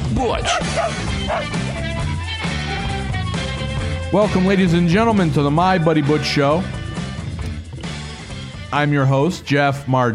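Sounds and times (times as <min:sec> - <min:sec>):
dense steady musical backing: 0:00.0 - 0:10.0
speech: 0:00.2 - 0:02.0, 0:04.1 - 0:06.8, 0:08.7 - 0:10.1
dog barking and yipping: 0:00.4 - 0:01.8.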